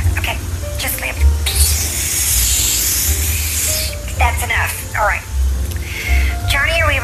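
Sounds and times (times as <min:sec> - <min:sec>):
faint low rumble: 0:00.0 - 0:07.0
aerosol spray of Scotchgard fabric protector hissing: 0:01.4 - 0:04.2.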